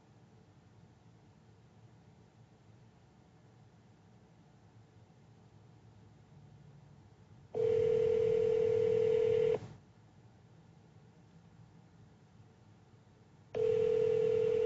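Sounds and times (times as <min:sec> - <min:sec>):
phone dialing tone: 0:07.6 - 0:09.6, 0:13.6 - 0:14.6.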